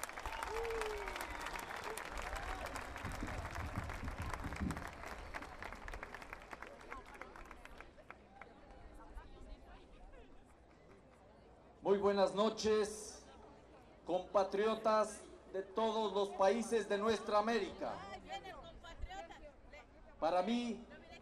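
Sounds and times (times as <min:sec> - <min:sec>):
large audience applauding: 0:00.0 - 0:08.0
speech: 0:11.9 - 0:13.0, 0:14.1 - 0:18.1, 0:20.2 - 0:20.9.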